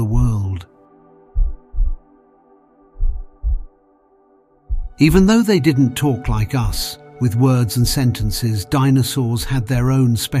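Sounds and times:
heartbeat sound effect lub-dub thumps: 1.3s - 2.1s, 3.0s - 3.8s, 4.7s - 5.3s
speech: 5.0s - 10.3s.

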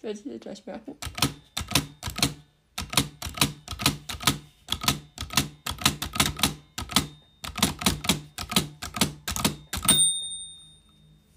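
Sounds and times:
speech: 0.0s - 1.4s
typewriter keys clacking: 1.0s - 10.0s
typewriter margin bell ding as the carriage nears the right margin: 1.1s - 2.4s, 4.8s - 11.2s.

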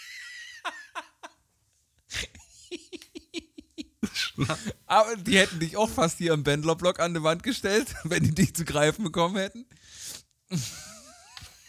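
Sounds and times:
speech: 4.4s - 9.7s
person breathing heavily catching breath: 9.7s - 10.3s
sharp gasping inhales: 9.7s - 10.3s.

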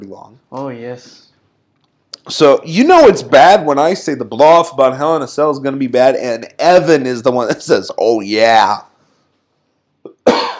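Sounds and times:
speech: 0.0s - 1.3s, 2.2s - 8.9s
harsh rasping cough: 10.1s - 10.5s.

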